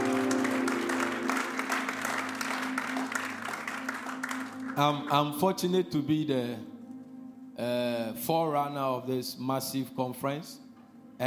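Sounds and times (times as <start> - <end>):
crowd clapping in a large room: 0.0 - 5.3
low sustained musical tone humming: 0.0 - 11.2
speech: 4.8 - 6.7, 7.6 - 10.6.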